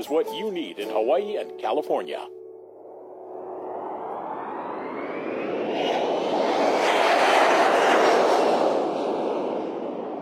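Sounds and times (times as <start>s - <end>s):
speech: 0.0s - 2.4s
jet airliner taking off: 2.6s - 10.2s.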